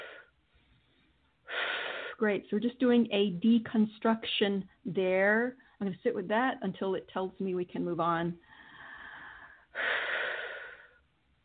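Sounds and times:
slow deep breathing: 0.0s - 2.2s, 8.4s - 11.1s
speech: 2.2s - 8.6s.

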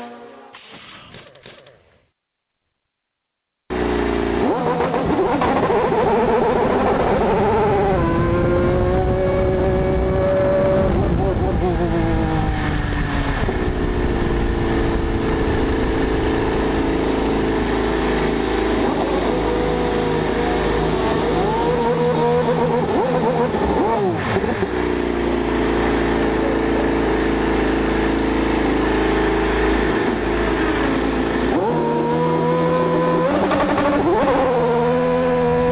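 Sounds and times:
race car engine whine at Indianapolis 500 qualifying: 3.7s - 35.7s.

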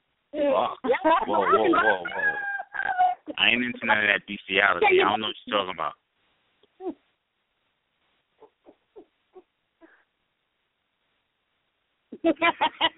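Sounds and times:
speech: 0.3s - 2.3s, 3.4s - 6.0s, 12.2s - 12.9s
person imitating a big dog barking: 0.5s - 3.5s
laughter: 0.8s - 3.9s, 4.7s - 5.6s, 12.2s - 12.9s.

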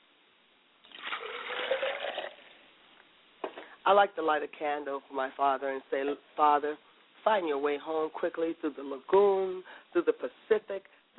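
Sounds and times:
water pouring into a glass: 0.8s - 2.6s
speech: 3.9s - 11.1s.

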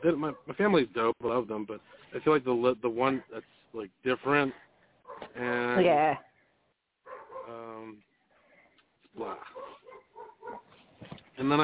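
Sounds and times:
speech: 0.0s - 6.3s, 7.5s - 8.1s, 9.2s - 9.8s, 10.5s - 11.6s
dog giving a whining bark indoors: 5.1s - 5.4s, 7.1s - 7.5s, 9.4s - 10.8s.

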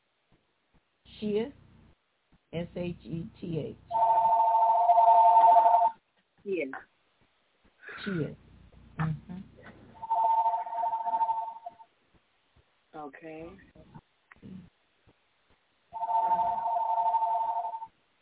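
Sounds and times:
speech: 1.2s - 1.6s, 2.5s - 4.0s, 6.4s - 6.9s, 8.0s - 8.4s, 13.0s - 14.7s
phone ringing: 3.9s - 6.0s, 10.0s - 11.8s, 16.0s - 17.9s.

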